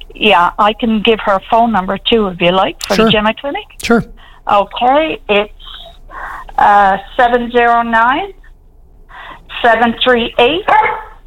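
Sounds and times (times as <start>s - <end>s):
speech: 0.2s - 8.4s, 9.2s - 11.1s
dog barking and yelping: 10.7s - 11.2s.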